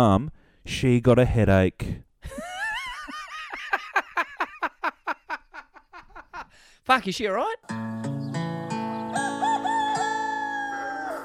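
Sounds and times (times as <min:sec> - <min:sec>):
speech: 0:00.0 - 0:02.5, 0:06.9 - 0:07.8
laughter: 0:02.3 - 0:06.5
rooster crowing: 0:09.0 - 0:11.2.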